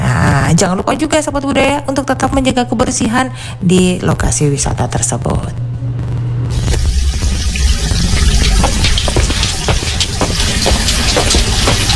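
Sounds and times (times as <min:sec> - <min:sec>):
speech: 0:00.5 - 0:05.6
mains water gushing from a tap opened wide: 0:06.5 - 0:11.9.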